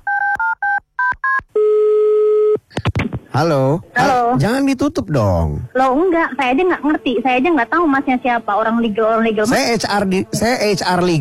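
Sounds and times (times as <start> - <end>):
long steady telephone tone: 0.0 - 2.6
speech: 3.4 - 11.1.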